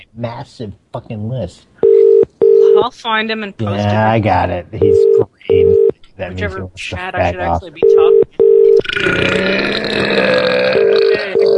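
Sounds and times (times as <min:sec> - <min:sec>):
speech: 0:00.2 - 0:08.4, 0:09.0 - 0:10.5
loud drawn-out burp from a person: 0:08.7 - 0:11.5.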